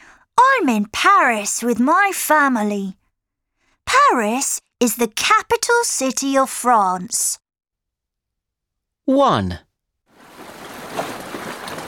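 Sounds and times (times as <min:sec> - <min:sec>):
speech: 0:00.6 - 0:03.0, 0:03.9 - 0:07.4, 0:09.1 - 0:09.7
rushing water wash of a boat moving on a river in Paris: 0:10.2 - 0:11.8.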